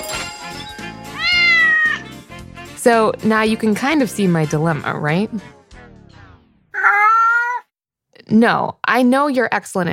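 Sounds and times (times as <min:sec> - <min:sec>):
cat making short chirpy vocalizations: 0:01.2 - 0:02.0, 0:06.8 - 0:07.6
cat meowing: 0:01.2 - 0:02.1, 0:06.8 - 0:07.7
speech: 0:02.8 - 0:05.6, 0:08.3 - 0:09.9.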